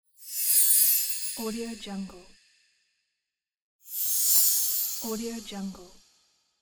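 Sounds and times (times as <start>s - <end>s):
small chimes: 0.2s - 1.8s, 3.9s - 5.3s.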